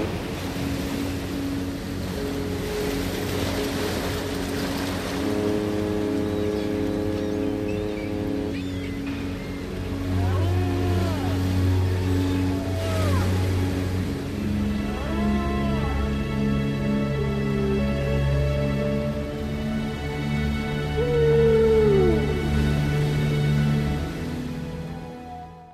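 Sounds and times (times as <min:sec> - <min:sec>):
steady low drone: 0:00.0 - 0:25.7
whale calls: 0:05.2 - 0:19.7, 0:20.5 - 0:25.7.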